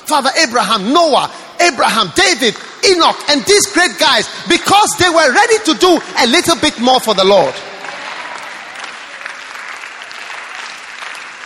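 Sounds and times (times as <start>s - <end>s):
speech: 0.1s - 7.7s
large audience clapping: 5.4s - 11.4s.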